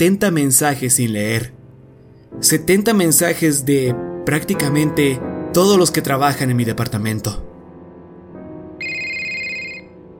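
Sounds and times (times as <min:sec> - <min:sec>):
speech: 0:00.0 - 0:01.6, 0:02.3 - 0:07.5
electronic ringtone of a phone with an incoming call: 0:08.8 - 0:10.0.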